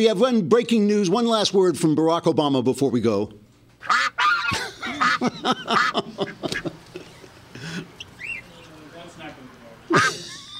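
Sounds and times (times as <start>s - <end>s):
speech: 0.0s - 4.2s, 5.2s - 6.8s
duck quacking: 3.8s - 6.7s, 8.0s - 8.7s, 9.9s - 10.3s
laughter: 4.1s - 8.4s, 9.9s - 10.5s.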